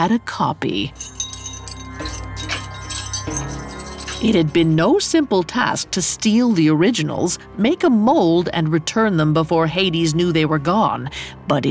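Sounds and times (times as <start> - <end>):
speech: 0.0 - 1.2, 4.2 - 11.7
bunch of keys jangling: 0.9 - 4.6.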